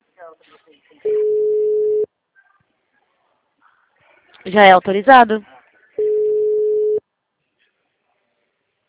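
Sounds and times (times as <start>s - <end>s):
speech: 0.3s - 1.5s, 4.4s - 5.5s
telephone ringback tone on an outgoing call: 1.1s - 2.1s, 6.0s - 7.0s.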